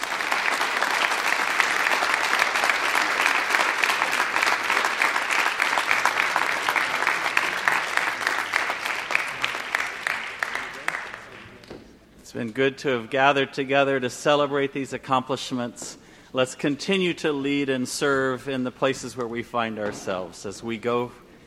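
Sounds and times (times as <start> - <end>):
audience applause: 0.0 - 11.8
speech: 12.4 - 21.2.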